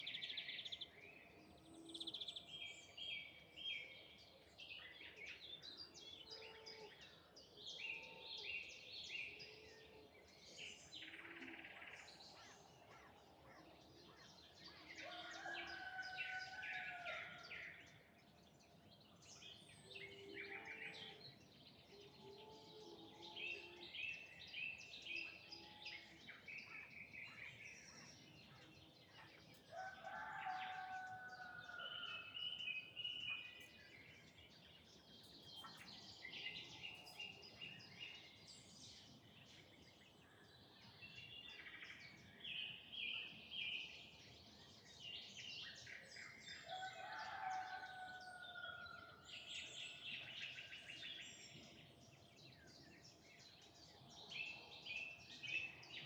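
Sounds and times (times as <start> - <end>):
evening birds in the countryside: 0.0 - 56.0
rooster in the countryside: 15.0 - 17.5, 29.7 - 32.3, 46.6 - 49.2.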